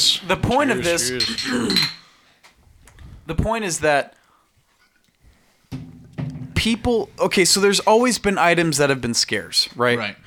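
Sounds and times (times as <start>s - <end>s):
speech: 0.2s - 2.0s, 3.3s - 4.2s, 6.6s - 10.2s
beer glasses clinking in a toast: 0.9s - 2.1s.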